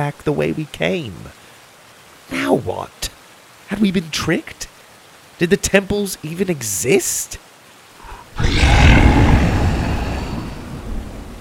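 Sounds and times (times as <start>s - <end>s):
speech: 0.0s - 1.4s, 2.3s - 4.7s, 5.4s - 7.5s, 8.4s - 9.2s
deep gurgling creature roar with tail: 8.0s - 11.1s.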